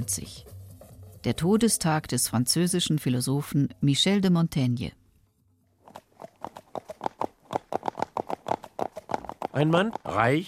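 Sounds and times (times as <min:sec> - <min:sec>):
speech: 0:00.0 - 0:00.5, 0:01.2 - 0:05.0, 0:09.6 - 0:10.4
ridden horse's hooves clip-clopping at a walk: 0:00.1 - 0:01.4, 0:05.8 - 0:10.4.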